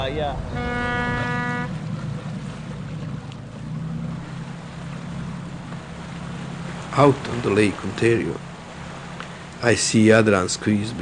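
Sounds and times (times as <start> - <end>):
tour boat horn blast: 0.0 - 3.2
tour boat engine rumble: 0.0 - 11.0
water churning behind a tour boat: 0.0 - 11.0
speech: 0.1 - 0.8, 7.0 - 8.5, 9.6 - 11.0.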